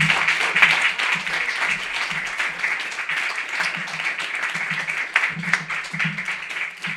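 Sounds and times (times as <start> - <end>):
audience at a poetry open mic applauding: 0.0 - 6.9
faint voices murmuring or cheering: 0.0 - 6.9.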